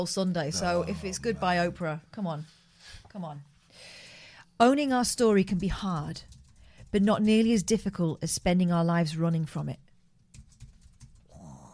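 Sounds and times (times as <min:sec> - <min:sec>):
speech: 0:00.0 - 0:04.0, 0:04.6 - 0:09.8
typing on a keyboard: 0:06.0 - 0:07.6, 0:10.3 - 0:11.3.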